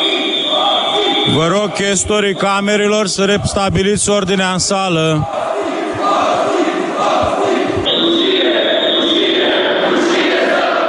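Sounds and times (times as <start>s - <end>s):
large group of lawmakers booing and jeering in a parliament chamber: 0.0s - 2.0s, 5.2s - 10.8s
sustained high whistle-like tone: 0.0s - 2.8s, 7.8s - 9.6s
speech: 1.3s - 7.4s.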